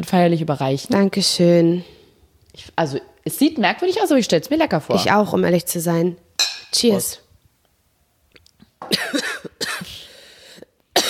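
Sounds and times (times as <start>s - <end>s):
speech: 0.0s - 2.0s, 2.6s - 7.2s
person clearing throat: 8.8s - 10.0s
person coughing: 8.8s - 10.1s.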